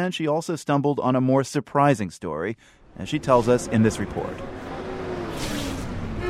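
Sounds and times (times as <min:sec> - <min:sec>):
speech: 0:00.0 - 0:04.6
busy road traffic rumble: 0:02.8 - 0:06.2
car horns: 0:03.6 - 0:06.2.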